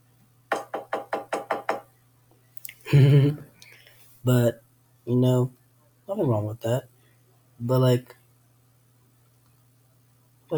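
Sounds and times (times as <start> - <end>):
knocking on wood: 0.5 - 1.9
low humming or voiced sound: 2.9 - 3.4
speech: 2.9 - 3.5, 4.2 - 6.9, 7.6 - 8.2.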